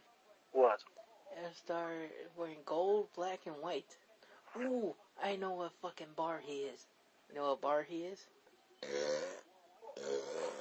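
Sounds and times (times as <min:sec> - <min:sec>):
speech: 0:00.6 - 0:09.4
loud low rumbling burps: 0:08.8 - 0:10.5.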